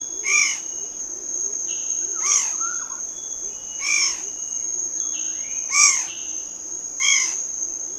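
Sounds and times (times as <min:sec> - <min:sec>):
steady high insect drone: 0:00.0 - 0:07.9
faint lower whistles: 0:01.6 - 0:03.4
long-billed honeyeater calling in Papua New Guinea: 0:01.7 - 0:03.0.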